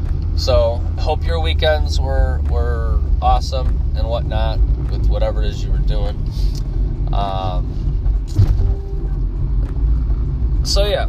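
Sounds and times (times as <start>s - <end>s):
car interior rumble driving on a city road: 0.0s - 11.0s
speech: 0.4s - 8.7s, 10.6s - 11.0s.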